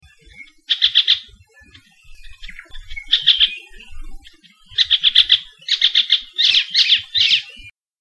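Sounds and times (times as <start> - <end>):
elepaio calling: 0.1 - 7.7.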